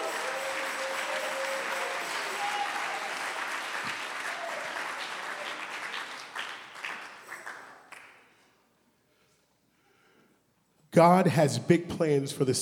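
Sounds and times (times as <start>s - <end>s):
audience clapping hands: 0.0s - 8.4s
speech: 11.0s - 12.6s.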